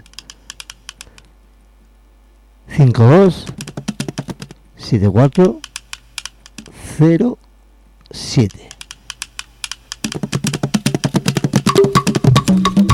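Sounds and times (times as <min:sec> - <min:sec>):
typing on a computer keyboard: 0:00.0 - 0:01.2, 0:03.4 - 0:04.6, 0:05.6 - 0:06.7, 0:08.5 - 0:12.9
speech: 0:02.8 - 0:03.9, 0:04.8 - 0:05.6, 0:07.0 - 0:07.4, 0:08.1 - 0:08.7.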